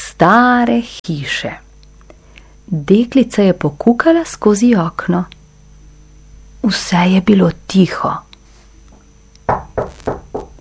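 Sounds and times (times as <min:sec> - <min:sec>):
speech: 0:00.2 - 0:01.6, 0:02.7 - 0:05.4, 0:06.6 - 0:08.3
knocking on the door of a lonely old house: 0:09.5 - 0:10.5.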